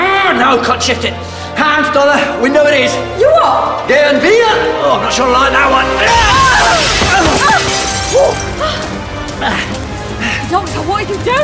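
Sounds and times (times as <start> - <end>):
speech: 0.4 - 8.8, 9.4 - 9.8, 10.5 - 11.4
pane of glass shattering as someone leaps through it: 6.0 - 9.0.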